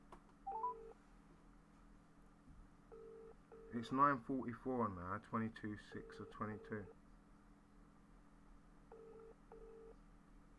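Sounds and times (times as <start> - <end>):
electronic telephone keypad beeps dialing a phone number: 0.5 - 0.9
speech: 3.7 - 7.0.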